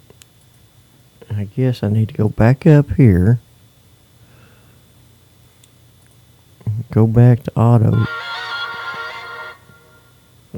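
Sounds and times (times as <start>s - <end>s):
quiet hum: 0.0s - 10.5s
speech: 1.2s - 3.5s, 7.0s - 8.3s
mobile phone ringing with a bright electronic tone: 7.9s - 10.2s.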